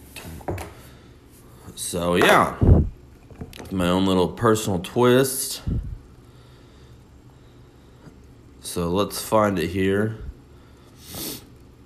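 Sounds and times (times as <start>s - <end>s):
speech: 1.8s - 2.8s, 3.7s - 5.9s, 8.7s - 10.2s
breathy nose sniff from a stuffy head cold: 11.0s - 11.5s.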